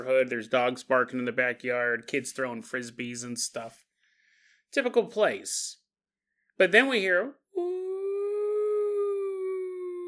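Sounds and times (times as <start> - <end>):
speech: 0.0 - 3.9, 4.7 - 5.8, 6.6 - 7.8
voice imitating an ambulance siren: 7.6 - 10.0.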